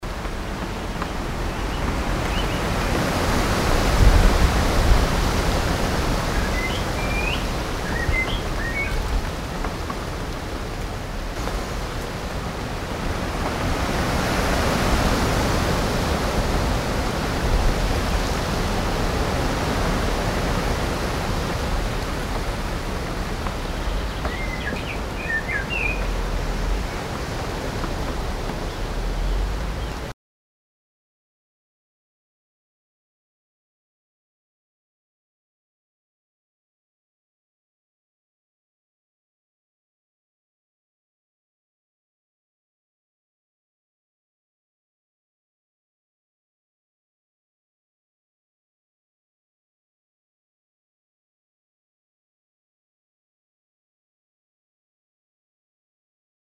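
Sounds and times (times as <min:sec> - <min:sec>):
wind: 0:00.0 - 0:30.2.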